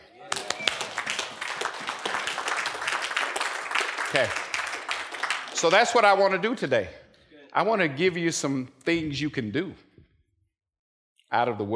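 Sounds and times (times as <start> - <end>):
audience clapping at a preacher's request: 0.0 - 6.6
speech: 4.1 - 4.4, 5.6 - 7.0, 7.6 - 9.9, 11.3 - 11.7.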